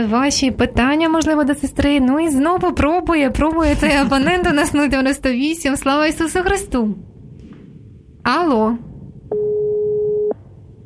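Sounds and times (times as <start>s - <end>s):
speech: 0.0s - 7.1s, 8.2s - 9.4s
steady telephone tone from a phone with the hold button engaged: 9.3s - 10.4s.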